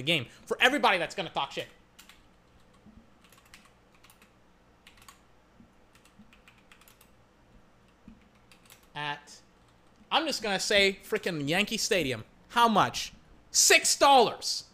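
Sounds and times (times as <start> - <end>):
speech: 0.0 - 1.8, 9.0 - 9.4, 10.1 - 14.7
keystrokes on a computer keyboard typing a web search: 1.6 - 5.3, 5.9 - 7.2, 7.8 - 9.0.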